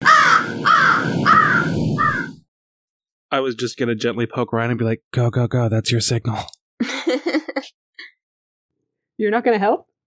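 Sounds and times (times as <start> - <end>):
crow cawing harshly: 0.0 - 2.4
speech: 3.3 - 7.3, 9.2 - 9.9
laughter: 6.8 - 7.7.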